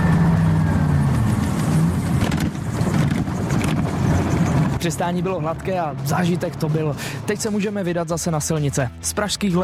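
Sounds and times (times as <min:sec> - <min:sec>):
flying car engine droning in flight over Letňany in Prague: 0:00.0 - 0:07.4
speech: 0:04.8 - 0:09.6.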